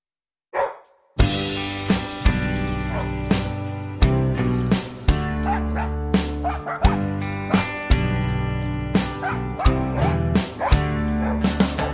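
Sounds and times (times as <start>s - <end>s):
several dogs barking and yipping in a park: 0.5s - 1.0s, 2.8s - 3.2s, 5.4s - 7.7s, 9.2s - 11.9s
bright musical accompaniment: 1.2s - 11.9s.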